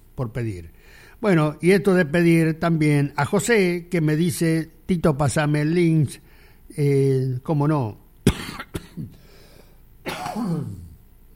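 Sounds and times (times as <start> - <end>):
speech: 0.2 - 8.0
person coughing: 8.3 - 9.2, 10.0 - 11.0.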